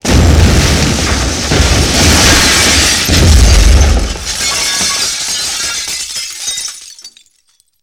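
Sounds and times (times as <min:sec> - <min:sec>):
explosion: 0:00.0 - 0:05.1
glass shattering: 0:01.5 - 0:07.8.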